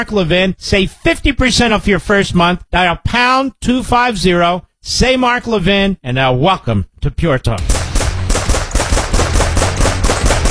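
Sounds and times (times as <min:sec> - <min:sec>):
speech: 0:00.0 - 0:07.8
rapid automatic gunfire from firearms: 0:07.6 - 0:10.4.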